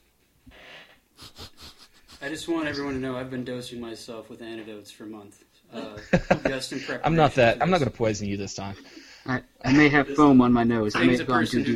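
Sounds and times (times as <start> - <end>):
person sniffing a glass of beer: 0.5 - 2.4, 8.8 - 9.3
speech: 2.2 - 11.7
laughter: 5.8 - 7.2.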